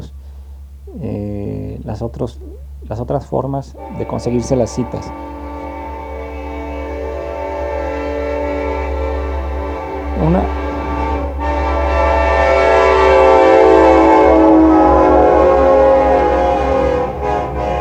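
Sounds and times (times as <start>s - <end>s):
speech: 1.9s - 5.4s, 10.2s - 10.6s
train passing by: 2.0s - 17.7s
sustained horn-like tones: 3.5s - 17.7s.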